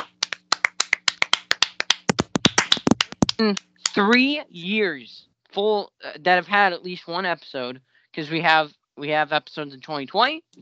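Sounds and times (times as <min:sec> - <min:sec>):
hands clapping: 0:00.0 - 0:04.4
speech: 0:03.4 - 0:10.6.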